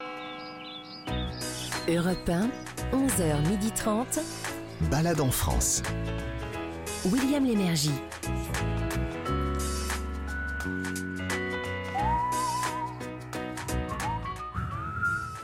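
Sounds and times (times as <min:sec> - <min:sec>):
loud steady music: 0:00.0 - 0:15.4
speech: 0:01.8 - 0:06.3, 0:07.0 - 0:08.2
person whistling a wavering shaky tune: 0:11.9 - 0:13.1, 0:13.9 - 0:15.4.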